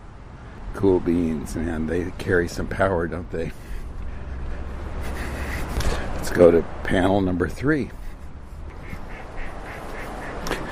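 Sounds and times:
noisy low rumble: 0.0 - 10.4
speech: 0.8 - 3.7, 6.3 - 8.0
ducks quacking: 3.5 - 6.1, 8.0 - 10.7.

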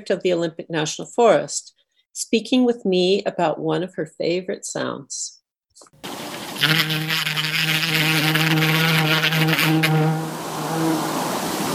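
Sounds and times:
speech: 0.0 - 8.3, 9.4 - 10.2
bee buzzing during buzz pollination: 6.0 - 11.5.

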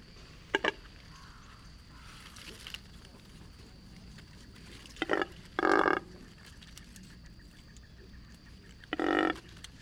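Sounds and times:
double-crested cormorant giving grunting, belching calls: 5.0 - 6.2, 8.0 - 9.5.

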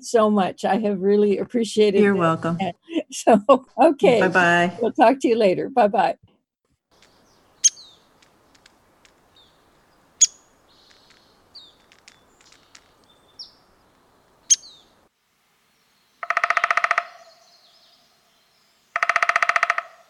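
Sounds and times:
speech: 0.0 - 6.3
downy woodpecker calls: 6.9 - 15.0, 16.2 - 17.8, 18.9 - 20.0
softer bird chirps and squeaky bird notes: 7.0 - 8.6, 10.2 - 13.6, 14.4 - 14.9.

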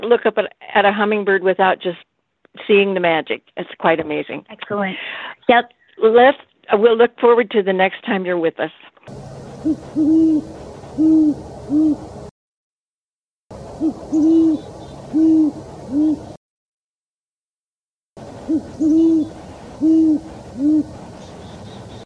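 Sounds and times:
speech: 0.0 - 12.2, 13.8 - 16.3, 18.5 - 21.0
great horned owl hooting: 9.1 - 12.2, 13.5 - 16.4, 18.2 - 22.0.

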